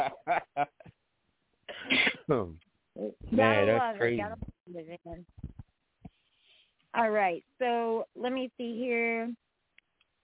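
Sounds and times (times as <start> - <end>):
person coughing: 1.7 - 2.5
speech: 2.3 - 2.6, 3.4 - 4.5, 7.0 - 9.4.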